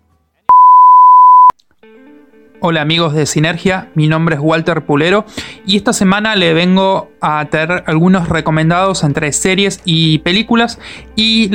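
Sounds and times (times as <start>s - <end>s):
answering machine beep: 0.5s - 1.5s
speech: 1.8s - 11.5s.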